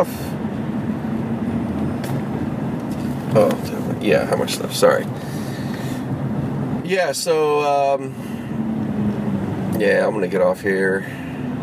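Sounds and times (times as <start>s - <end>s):
speech: 0.0s - 0.2s, 3.3s - 5.4s, 6.9s - 8.4s, 9.8s - 11.2s
road traffic and engine noise rumble: 0.0s - 11.6s.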